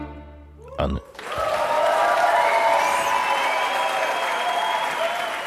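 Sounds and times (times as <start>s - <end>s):
crowd cheering: 0.6s - 5.4s
speech: 0.8s - 1.3s
audience applause after live concert: 1.1s - 5.4s.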